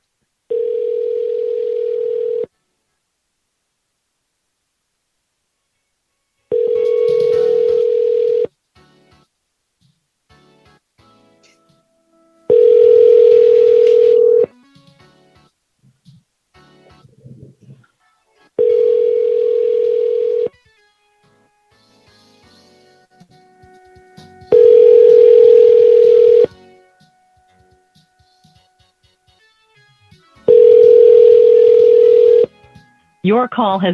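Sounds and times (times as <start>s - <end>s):
telephone tones while calling a number back: 0.5s - 2.5s, 6.5s - 8.5s, 12.5s - 14.5s, 18.6s - 20.6s, 24.5s - 26.5s, 30.4s - 32.5s
speech: 33.3s - 33.9s.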